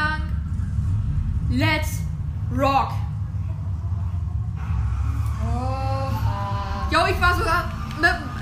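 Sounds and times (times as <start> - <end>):
video game car engine revving and pulling away: 0.0 - 8.3
speech: 1.5 - 3.0.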